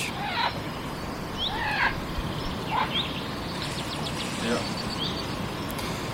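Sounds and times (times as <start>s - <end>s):
chaffinch singing: 0.0s - 5.9s
steady hiss of outdoor noise: 0.0s - 6.1s.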